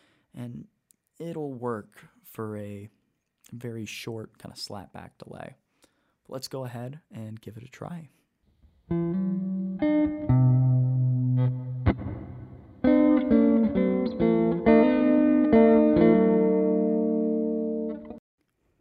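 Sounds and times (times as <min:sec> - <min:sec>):
speech: 0:00.4 - 0:05.6, 0:06.3 - 0:08.2, 0:08.9 - 0:09.6
electric guitar through overdrive and reverb pedals playing rhythm chords: 0:08.8 - 0:18.2.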